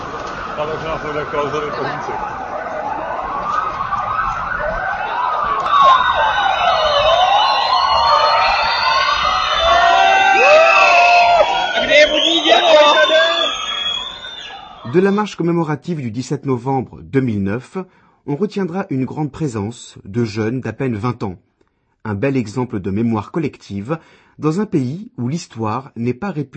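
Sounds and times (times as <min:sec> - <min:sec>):
police sirens wailing: 0:00.0 - 0:15.2
speech: 0:00.6 - 0:02.5, 0:14.9 - 0:26.5.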